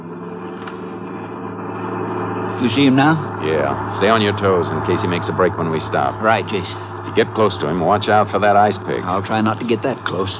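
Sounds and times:
car engine humming while driving around a bus: 0.0 - 10.3
road noise: 0.0 - 10.3
speech: 2.6 - 10.3.

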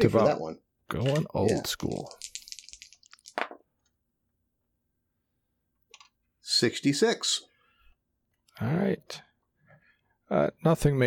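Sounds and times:
speech: 0.0 - 2.4, 6.6 - 7.5, 8.6 - 9.3, 10.3 - 11.0
percentile dice rattling and clattering across a hard surface: 0.9 - 3.6.

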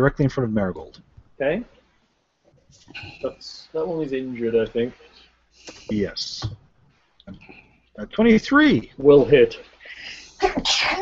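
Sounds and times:
speech: 0.0 - 1.8, 2.7 - 6.6, 7.3 - 10.9
person sneezing: 10.4 - 10.9.

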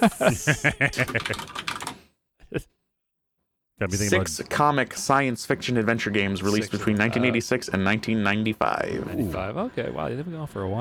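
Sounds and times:
speech: 0.0 - 1.6, 2.5 - 2.7, 3.8 - 10.7
laughter: 0.0 - 1.8
typing on a clicky computer keyboard: 0.9 - 2.0.

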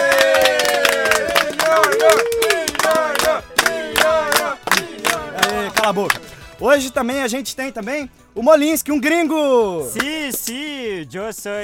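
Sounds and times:
crowd cheering and whooping at a live show: 0.0 - 4.5
people clapping at a live show: 0.0 - 6.4, 9.9 - 10.6
speech: 5.9 - 11.6.

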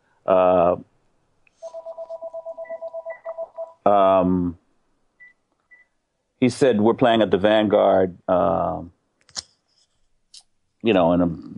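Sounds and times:
speech: 0.3 - 0.9, 3.9 - 4.6, 6.4 - 9.0, 10.8 - 11.5
mobile phone ringing with electronic beeps: 1.6 - 3.8.

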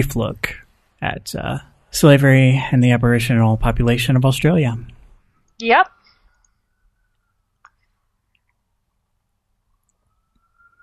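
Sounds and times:
speech: 0.0 - 5.0, 5.6 - 6.0
faint police siren wailing outside: 9.9 - 10.8.

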